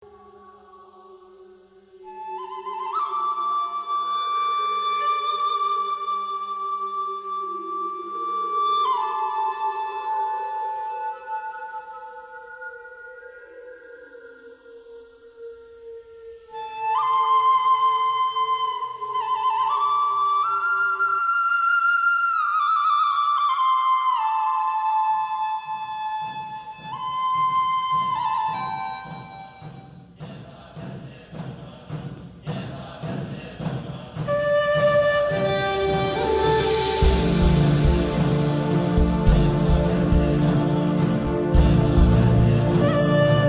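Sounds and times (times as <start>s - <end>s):
Indian spirit music: 0.0s - 43.4s.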